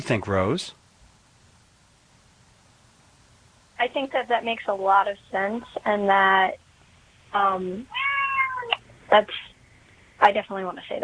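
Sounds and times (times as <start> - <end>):
speech: 0.0 - 0.8, 3.9 - 6.6, 7.3 - 8.0, 9.1 - 9.5, 10.2 - 11.0
faint low hum: 0.0 - 11.0
cat meowing: 7.9 - 8.8.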